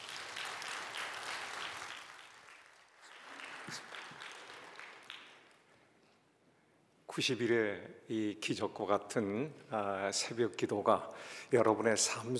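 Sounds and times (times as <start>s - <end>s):
congregation applauding: 0.0s - 5.8s
speech: 3.7s - 3.9s, 7.2s - 12.3s.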